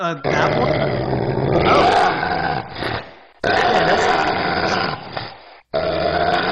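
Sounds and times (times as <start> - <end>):
speech: 0.0 - 2.0
demonic dog growl sound effect with distorted tone: 0.2 - 6.4.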